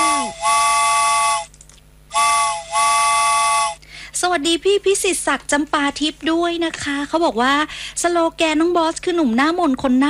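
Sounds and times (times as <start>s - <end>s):
train whistle for a train arriving and waiting: 0.0s - 1.5s, 2.1s - 3.8s
speech: 4.2s - 10.0s.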